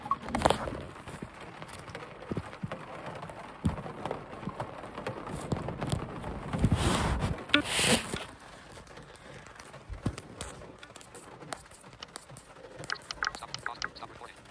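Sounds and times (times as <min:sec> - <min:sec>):
heavy rain pouring down: 0:00.0 - 0:14.5.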